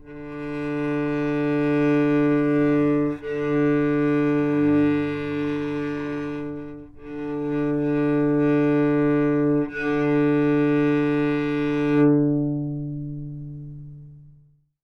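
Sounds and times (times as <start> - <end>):
sustained D3 note on cello played by a novice: 0.0 - 14.1.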